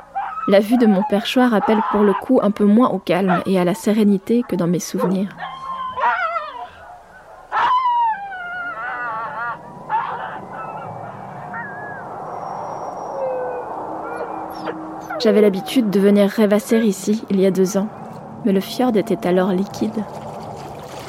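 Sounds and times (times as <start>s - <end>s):
many chained sled dogs howling and yelping excitedly on ice: 0.0s - 17.3s
speech: 0.5s - 5.5s, 15.2s - 20.2s.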